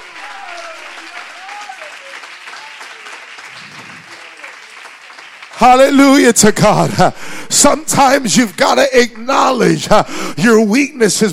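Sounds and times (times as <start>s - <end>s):
audience clapping hands in a large, lively room: 0.0s - 10.1s
speech: 5.6s - 11.3s.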